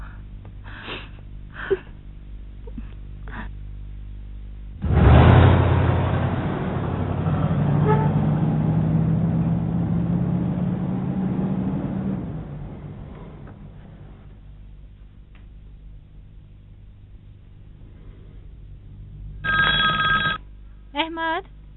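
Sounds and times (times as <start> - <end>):
steady low hum: 0.0 - 21.7
telephone ringing: 19.4 - 20.4.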